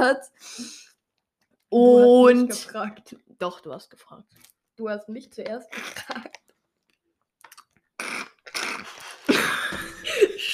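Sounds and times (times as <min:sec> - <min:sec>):
speech: 0:00.0 - 0:00.8, 0:01.7 - 0:06.4
soft mouth sounds: 0:07.4 - 0:09.3
wet slurping: 0:07.4 - 0:09.3
laughter: 0:08.9 - 0:10.5.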